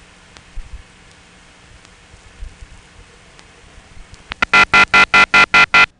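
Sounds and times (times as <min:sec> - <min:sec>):
faint telephone line hiss: 0:00.0 - 0:05.9
ringing tone from a DMS-10 telephone switch in Cleveland Georgia: 0:04.4 - 0:05.9.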